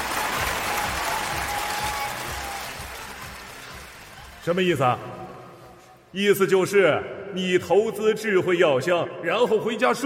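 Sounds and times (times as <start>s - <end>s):
crowd applauding: 0.0s - 4.9s
speech: 4.4s - 5.2s, 6.1s - 10.0s.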